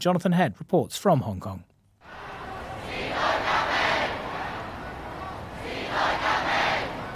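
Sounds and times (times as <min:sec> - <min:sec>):
speech: 0:00.0 - 0:01.7
large protest crowd chanting in unison on main roads of central Hong Kong: 0:02.0 - 0:07.1
steady roar of voices: 0:02.0 - 0:07.1.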